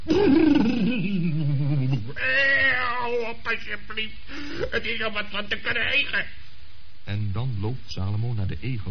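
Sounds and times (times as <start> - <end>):
person imitating a horse's neigh: 0.0 - 3.2
speech: 3.5 - 6.4, 7.1 - 8.8.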